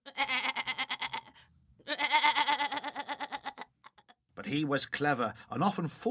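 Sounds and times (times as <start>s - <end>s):
goat bleating in quavering calls: 0.0s - 3.7s
speech: 4.5s - 6.0s.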